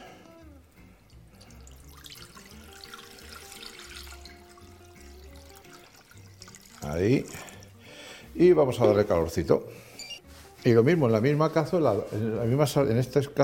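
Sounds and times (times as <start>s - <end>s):
water pouring into a cooking pot holding jars of canned pochas beans: 1.1s - 7.8s
speech: 6.9s - 7.5s, 8.4s - 9.9s, 10.6s - 13.4s.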